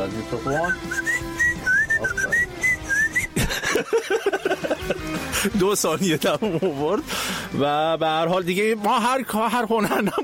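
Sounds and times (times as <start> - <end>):
speech: 0.1 - 2.6, 3.8 - 10.2
person whistling a wavering melodic tune: 0.5 - 3.4
laughter: 2.2 - 7.1, 9.6 - 10.2.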